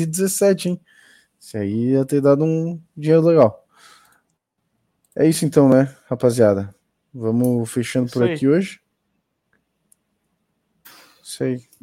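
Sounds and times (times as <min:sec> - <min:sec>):
speech: 0:00.0 - 0:03.9, 0:05.2 - 0:08.8, 0:11.3 - 0:11.8
faint clicks: 0:04.0 - 0:04.4.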